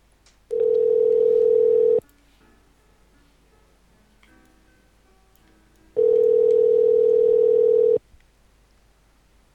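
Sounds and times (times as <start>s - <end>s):
loud steady electronic telephone tone: 0.5s - 2.0s, 6.0s - 8.0s.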